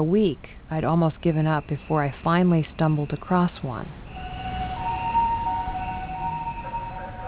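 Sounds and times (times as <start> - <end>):
speech: 0.0 - 4.0
dull rumble of traffic and street noise: 0.0 - 7.2
two-tone ambulance siren in Japan: 4.0 - 7.2.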